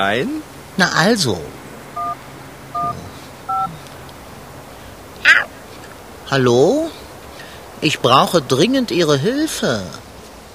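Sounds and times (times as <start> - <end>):
speech: 0.0 - 1.6, 6.3 - 6.9, 7.8 - 10.0
mobile phone keypad tones dialing the fire brigade: 2.0 - 2.2, 2.8 - 3.7
harsh squawk: 2.8 - 3.9, 5.2 - 5.6.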